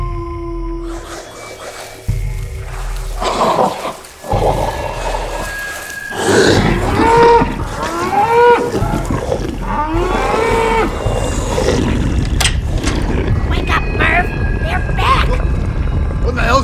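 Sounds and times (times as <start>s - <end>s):
low rumbling background: 2.1s - 16.6s
cattle mooing: 3.2s - 12.4s.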